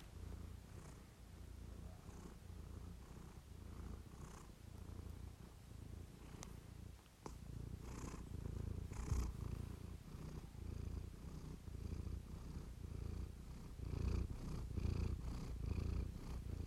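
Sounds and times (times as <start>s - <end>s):
cat purring: 0.0s - 16.6s.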